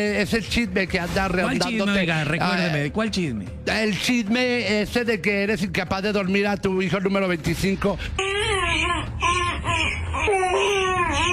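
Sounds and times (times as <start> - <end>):
speech: 0.0 - 8.9
baby boy wailing: 8.2 - 11.3.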